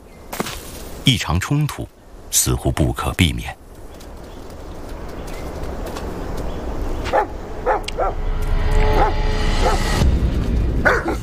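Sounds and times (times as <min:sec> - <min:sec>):
steady rushing outdoor noise: 0:00.0 - 0:11.2
speech: 0:01.0 - 0:03.6
dog barking in short sharp yaps: 0:07.0 - 0:08.2, 0:08.9 - 0:10.0, 0:10.8 - 0:11.2.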